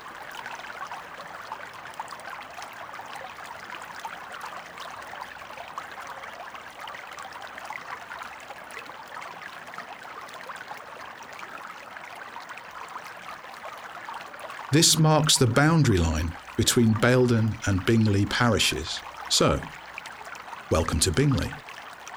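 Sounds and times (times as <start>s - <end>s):
small stream babbling under a little footbridge: 13.5s - 19.8s, 20.7s - 22.1s
speech: 14.7s - 19.8s, 20.7s - 21.6s.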